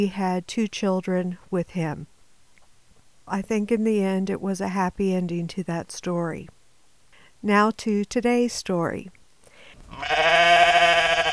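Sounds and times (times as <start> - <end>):
speech: 0.0 - 2.1, 3.3 - 6.6, 7.4 - 9.2, 9.9 - 10.9
sheep giving a long wavering nasal bleat: 9.9 - 11.3.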